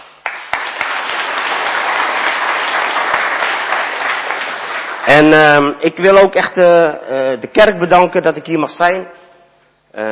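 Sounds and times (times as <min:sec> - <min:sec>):
congregation applauding: 0:00.0 - 0:05.4
speech: 0:05.1 - 0:09.2.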